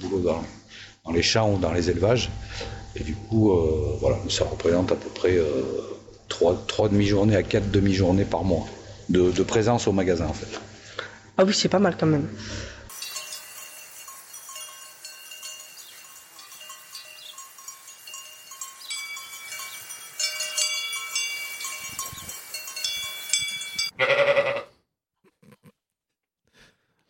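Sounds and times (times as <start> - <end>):
speech: 0.1 - 10.7, 11.4 - 12.7
bells clinking: 12.9 - 23.9
goat bleating: 23.9 - 24.8.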